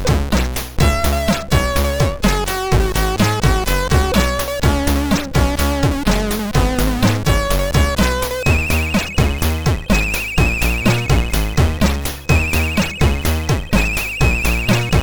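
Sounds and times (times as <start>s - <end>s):
short chiptune melody from a MOS6581R3 SID chip: 0.1s - 15.0s.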